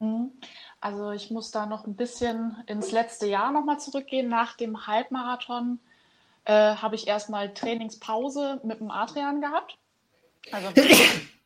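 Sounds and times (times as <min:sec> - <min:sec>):
speech: 0:00.8 - 0:09.8, 0:10.4 - 0:11.4
person sneezing: 0:10.5 - 0:11.4.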